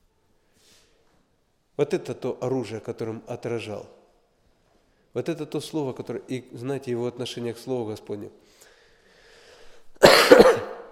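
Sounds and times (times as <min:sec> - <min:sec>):
speech: 0:01.8 - 0:04.0, 0:05.2 - 0:08.7
harsh throaty human cough: 0:10.0 - 0:10.9.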